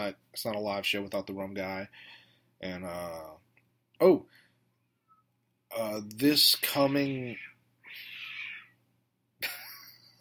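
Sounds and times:
speech: 0:00.0 - 0:03.4, 0:04.0 - 0:04.4, 0:05.7 - 0:08.1
cat giving harsh cries: 0:06.8 - 0:08.8.

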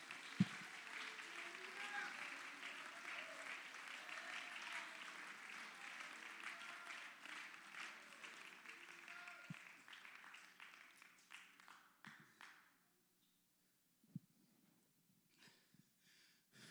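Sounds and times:
voices: 0:00.0 - 0:09.6
crowd clapping in a large room: 0:00.0 - 0:12.7.

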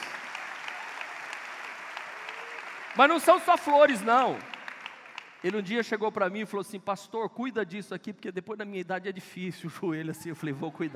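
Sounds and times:
large audience applauding: 0:00.0 - 0:05.7
speech: 0:03.0 - 0:04.5, 0:05.4 - 0:10.9
laughter: 0:09.9 - 0:10.9.

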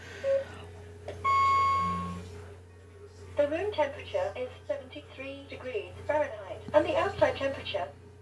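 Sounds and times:
low hum: 0:00.0 - 0:08.2
household clock beep: 0:01.2 - 0:02.2
overlapping electronic tones of household clocks going off: 0:01.2 - 0:02.2
speech: 0:03.5 - 0:08.0.

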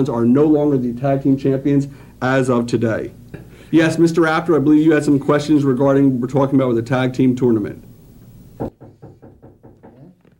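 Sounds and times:
speech: 0:00.0 - 0:07.9
knocking on a door: 0:08.6 - 0:10.1.

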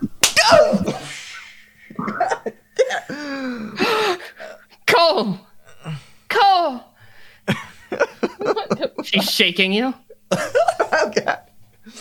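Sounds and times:
sharp hand slap: 0:00.2 - 0:00.7
strained wordless gasps and pained cries: 0:00.4 - 0:01.2, 0:01.8 - 0:04.8, 0:05.6 - 0:06.7
laughter: 0:07.5 - 0:09.5, 0:10.1 - 0:11.5
speech: 0:09.4 - 0:10.5.

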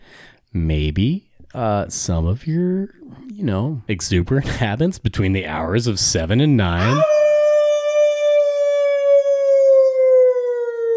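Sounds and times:
speech: 0:00.5 - 0:07.2
tornado warning siren wailing: 0:06.8 - 0:10.9.

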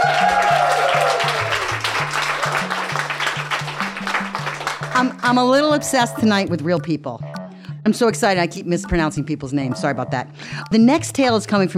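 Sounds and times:
crowd applauding with many hands clapping: 0:00.0 - 0:05.2
speech: 0:05.0 - 0:11.7.

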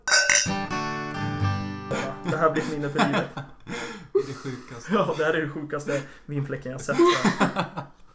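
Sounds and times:
glasses clinking in a toast: 0:00.0 - 0:00.7
laughter: 0:01.9 - 0:05.3, 0:06.9 - 0:07.8
speech: 0:02.4 - 0:03.5, 0:04.2 - 0:08.0.

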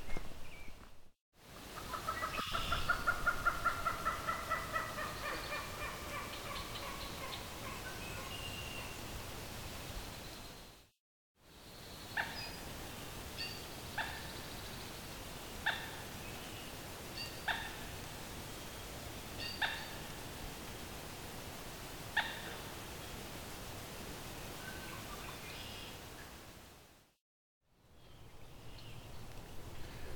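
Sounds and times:
steady hiss of outdoor noise: 0:00.0 - 0:30.1
medium-sized red-faced marsh bird with dark body and yellow legs clucking: 0:01.8 - 0:08.9, 0:19.4 - 0:20.0.

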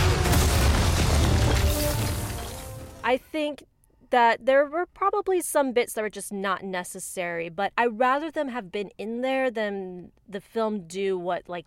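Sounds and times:
airstrike explosion: 0:00.0 - 0:03.1
speech: 0:03.1 - 0:11.6.

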